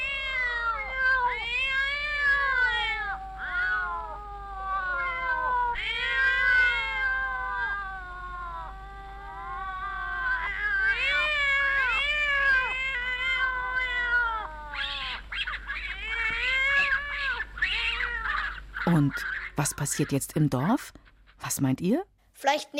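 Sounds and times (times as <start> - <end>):
several kittens mewling and squeaking: 0.0 - 20.7
speech: 19.1 - 21.0, 21.6 - 22.7.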